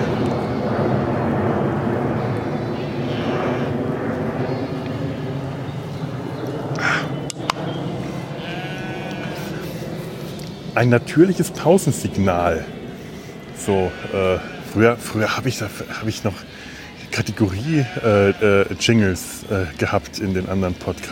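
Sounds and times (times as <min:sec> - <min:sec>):
airplane engine roar passing overhead: 0:00.0 - 0:21.1
bird calls: 0:04.3 - 0:21.1
speech: 0:10.8 - 0:12.8, 0:13.6 - 0:21.1.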